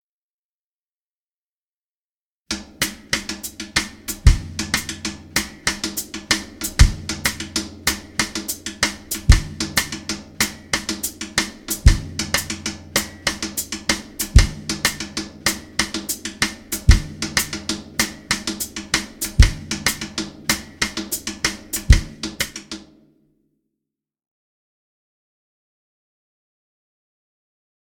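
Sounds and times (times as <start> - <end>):
cascara groove: 2.6 - 22.8.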